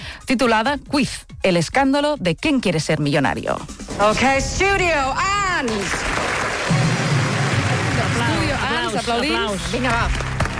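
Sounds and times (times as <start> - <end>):
speech: 0.3 - 6.8, 8.9 - 10.3
studio audience applause: 5.6 - 10.5.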